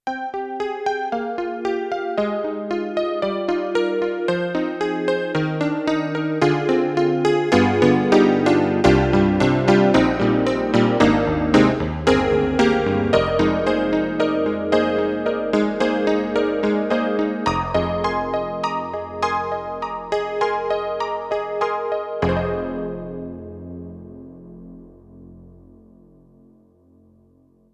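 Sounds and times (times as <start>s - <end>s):
detuned CP80 electric piano: 0.8s - 27.4s.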